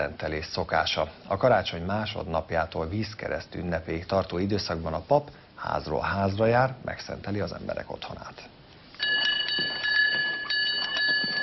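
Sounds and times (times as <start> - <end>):
speech: 0.0 - 8.6
small handbell rung announcing priest's arrival: 9.0 - 11.4.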